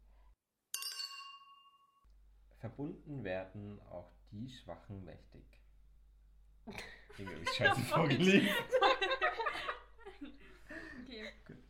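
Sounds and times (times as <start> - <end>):
two wine glasses clinking in a toast: 0.7 - 2.0
quiet room noise: 2.0 - 11.6
speech: 2.6 - 5.6, 6.6 - 9.0
laughter: 6.8 - 11.0.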